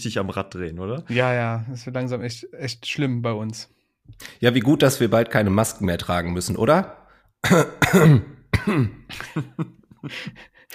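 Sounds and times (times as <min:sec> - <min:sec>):
speech: 0:00.0 - 0:10.7
harsh coughing: 0:07.4 - 0:10.3.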